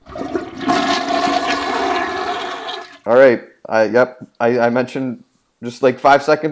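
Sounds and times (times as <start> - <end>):
toilet flushing: 0.0 - 3.1
speech: 3.1 - 6.4.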